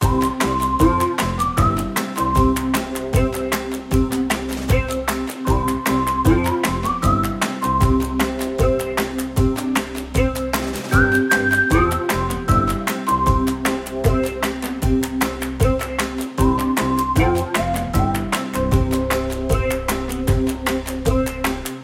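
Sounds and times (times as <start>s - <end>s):
happy clapping loop: 0.0s - 21.8s
whistle loop: 0.2s - 2.6s, 5.6s - 8.8s, 10.9s - 13.6s.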